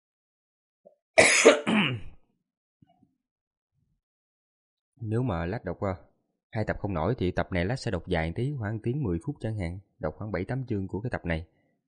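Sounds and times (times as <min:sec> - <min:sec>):
harsh cough from a person feeling sluggish and unwell: 0:01.2 - 0:02.2
speech: 0:05.0 - 0:11.6.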